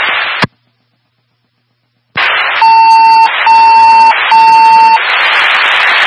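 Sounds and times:
loud hissing radio static: 0.0 - 0.8, 2.2 - 6.0
fire dispatch electronic alert beeps over a radio channel: 2.6 - 5.0.

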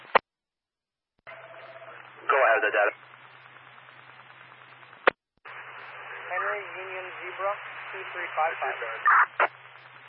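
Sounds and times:
crackling static on a dispatch radio transmission: 0.0 - 0.2, 1.3 - 10.0
narrow-band radio voice on a dispatch channel: 2.2 - 3.0, 6.3 - 9.5
speech: 2.6 - 3.1, 6.6 - 9.5.

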